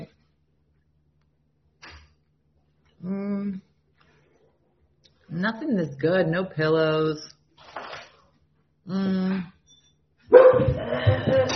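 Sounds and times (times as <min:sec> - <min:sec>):
speech: 0:05.4 - 0:07.4, 0:08.9 - 0:09.6, 0:10.5 - 0:11.5
dog giving a drawn-out tonal bark: 0:10.3 - 0:10.8.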